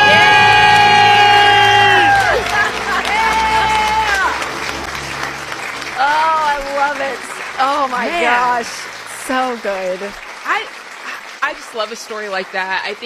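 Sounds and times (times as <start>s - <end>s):
small group screaming and cheering in celebration: 0.0s - 9.1s
people clapping: 0.0s - 13.0s
speech: 8.0s - 10.8s, 11.5s - 13.0s.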